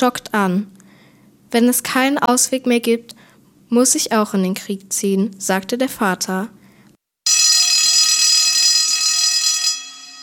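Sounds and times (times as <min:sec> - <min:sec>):
speech: 0:00.0 - 0:00.8, 0:01.5 - 0:06.6
loud high-pitched electronic alarm ringing: 0:07.3 - 0:10.2.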